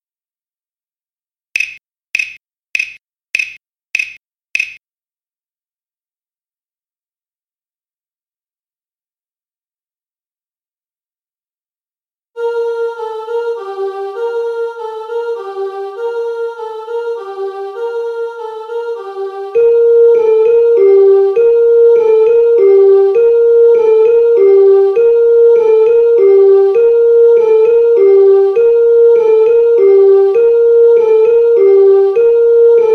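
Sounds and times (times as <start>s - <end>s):
piano playing a carol: 12.4s - 32.9s.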